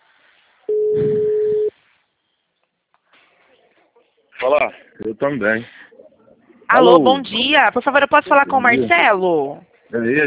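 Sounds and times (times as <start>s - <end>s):
telephone ringback tone of an outgoing call: 0.7s - 1.7s
speech: 4.4s - 5.8s, 6.7s - 10.2s.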